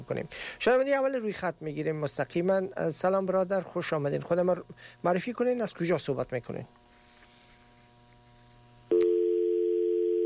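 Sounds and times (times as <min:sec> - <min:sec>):
faint hum: 0:00.0 - 0:10.2
speech: 0:00.1 - 0:06.8
telephone tone after caller's line disconnects: 0:08.9 - 0:10.2.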